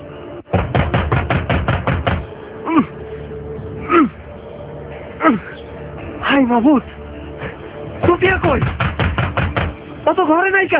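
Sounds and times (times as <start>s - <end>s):
door barred from the inside forced open with a crowbar: 0.5s - 2.2s, 8.0s - 9.8s
speech: 6.5s - 7.0s, 8.4s - 8.8s, 10.1s - 10.7s.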